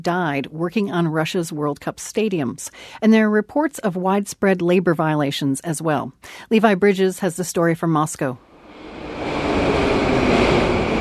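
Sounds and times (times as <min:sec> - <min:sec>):
speech: 0:00.0 - 0:08.5
metro train pulling into an underground station in Moscow: 0:08.5 - 0:11.0
thin high whine of a metro train: 0:08.5 - 0:11.0.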